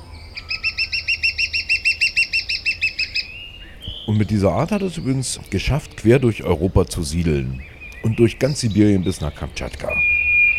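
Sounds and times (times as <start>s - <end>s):
lesser spotted woodpecker call: 0.0s - 6.2s, 7.5s - 10.5s
speech: 4.1s - 10.2s.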